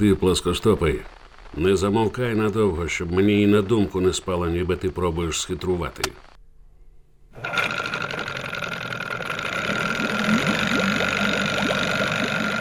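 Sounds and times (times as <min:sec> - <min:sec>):
speech: 0:00.0 - 0:06.3
motorboat engine running at speed in a bay: 0:07.4 - 0:12.6.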